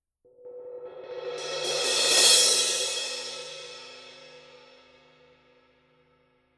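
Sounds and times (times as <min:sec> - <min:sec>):
heavy crash cymbal: 0:00.4 - 0:05.6.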